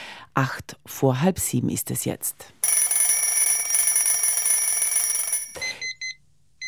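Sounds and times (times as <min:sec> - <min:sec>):
speech: 0:00.4 - 0:02.6
alarm clock ringing: 0:02.6 - 0:06.0.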